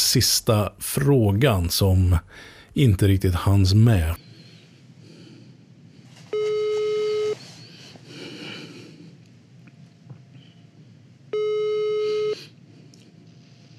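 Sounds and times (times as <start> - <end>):
speech: 0.1 - 4.3
telephone ringback tones during outgoing call: 6.3 - 7.4, 11.3 - 12.5.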